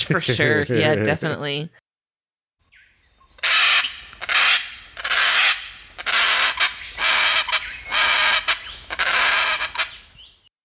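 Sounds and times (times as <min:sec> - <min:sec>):
speech: 0:00.1 - 0:01.8
Dracula parrot raspy screams: 0:03.4 - 0:09.9.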